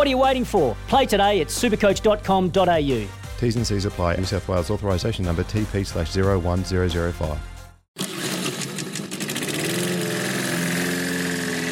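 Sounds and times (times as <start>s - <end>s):
speech: 0.0s - 7.5s
lawn mower engine starting and idling: 8.0s - 11.7s.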